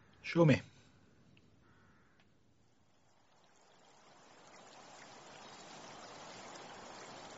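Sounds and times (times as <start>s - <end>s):
trickling stream: 1.9s - 7.3s
small waterfall in a former mining village: 3.0s - 7.3s.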